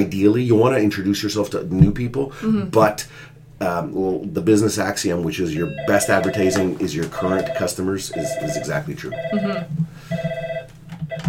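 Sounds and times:
speech: 0.0s - 10.2s
telephone ringing with a bright electronic tone: 5.7s - 11.2s.

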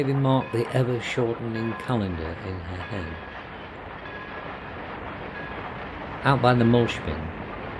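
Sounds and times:
speech: 0.0s - 3.3s, 6.2s - 7.4s
faint metallic squeals of train on rails: 0.0s - 5.9s
train rumbling along rails: 0.0s - 7.7s.

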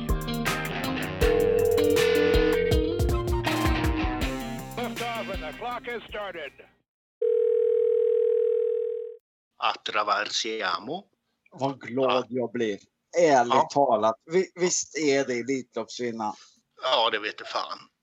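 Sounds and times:
dense cluttered music and noise: 0.0s - 6.3s
ringing tone of an outgoing phone call: 1.2s - 3.1s, 7.2s - 9.2s
speech: 5.8s - 6.7s, 9.6s - 17.9s.

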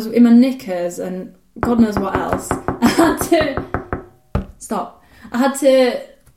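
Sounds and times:
speech: 0.0s - 3.8s, 4.6s - 6.1s
firm knocks on a door: 1.6s - 4.6s.

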